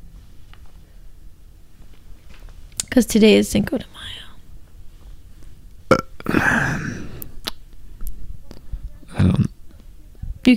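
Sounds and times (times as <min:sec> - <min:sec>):
speech: 0:03.0 - 0:04.2
person belching: 0:05.9 - 0:07.2, 0:09.1 - 0:09.5.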